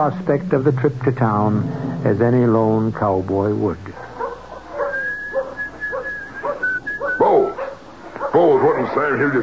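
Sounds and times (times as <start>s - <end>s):
speech: 0.0s - 4.1s, 9.0s - 9.4s
man whistling a soft tune while hitching a wagon: 4.9s - 7.3s.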